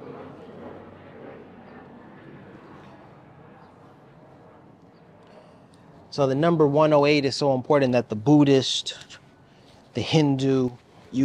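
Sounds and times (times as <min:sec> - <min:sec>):
airplane flying overhead: 0:00.0 - 0:11.2
speech: 0:06.1 - 0:09.2, 0:10.0 - 0:11.2.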